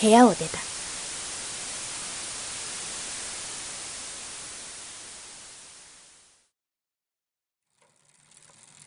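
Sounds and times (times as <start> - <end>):
speech: 0.0 - 0.6
quieter grainy noise: 0.0 - 6.4
loud dense TV static hiss: 0.0 - 6.5.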